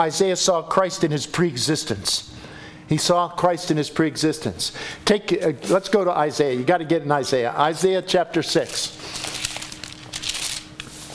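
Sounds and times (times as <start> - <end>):
speech: 0.0 - 9.3
Bible pages being turned by many hands: 8.6 - 11.1.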